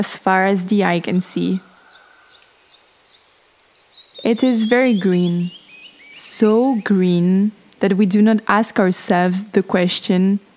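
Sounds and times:
speech: 0.0s - 1.7s, 4.2s - 10.5s
faint outdoor ambience: 0.0s - 10.5s
soft high bird chirps: 0.4s - 7.2s.

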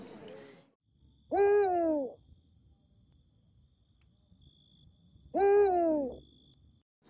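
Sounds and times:
faint steady night-time insect hum: 0.9s - 6.8s
Eurasian eagle-owl deep hooting at night in the wild: 1.3s - 2.2s, 5.3s - 6.4s.

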